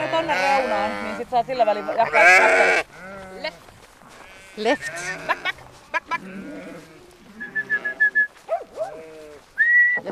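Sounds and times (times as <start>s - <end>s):
flock of sheep bleating while being herded: 0.0s - 8.2s, 8.8s - 9.5s
speech: 0.2s - 3.7s, 4.6s - 7.0s
sharp steady whistle blasts: 7.4s - 8.3s, 9.6s - 10.1s.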